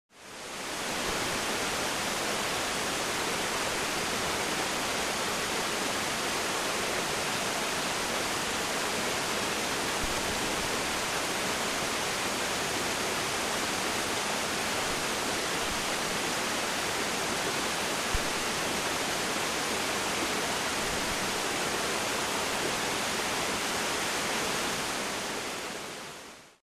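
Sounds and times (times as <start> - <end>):
medium waterfall: 0.1 - 26.6.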